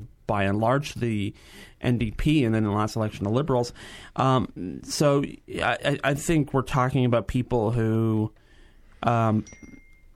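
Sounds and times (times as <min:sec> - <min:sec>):
speech: 0:00.3 - 0:08.4, 0:09.0 - 0:09.8
single loud brief bell ring with ringing tail in a quiet room: 0:09.2 - 0:10.1.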